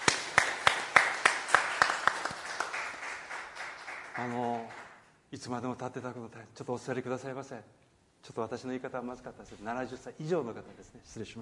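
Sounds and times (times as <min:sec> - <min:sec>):
audience applause: 0:00.0 - 0:05.0
speech: 0:04.2 - 0:11.4.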